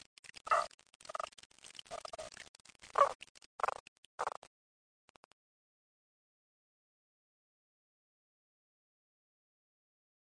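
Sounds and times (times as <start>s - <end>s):
frog croaking: 0.4s - 1.3s, 1.9s - 4.5s.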